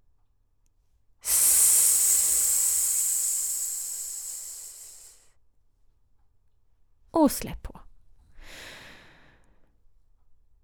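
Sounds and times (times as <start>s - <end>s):
airy inhalation from a breathing exercise: 1.2s - 5.3s
speech: 7.2s - 7.8s.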